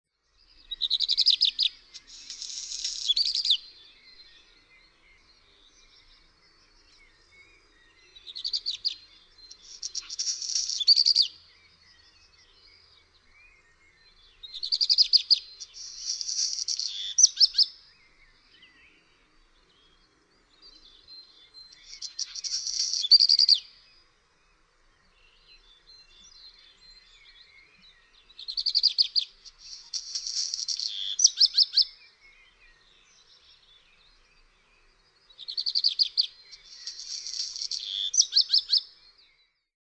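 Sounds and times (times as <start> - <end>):
birds singing: 0.3 - 39.7.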